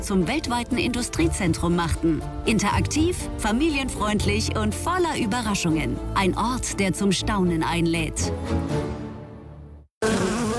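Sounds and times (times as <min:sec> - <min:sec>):
speech: 0:00.0 - 0:09.0
wasps buzzing around a nest on a house: 0:10.0 - 0:10.5.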